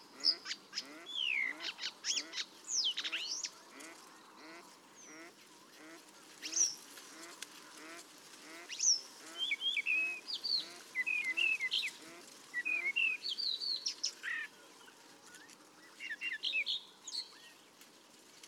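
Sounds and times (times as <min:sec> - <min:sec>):
paddyfield warbler Acrocephalus agricola song: 0:00.0 - 0:05.7, 0:08.7 - 0:17.8.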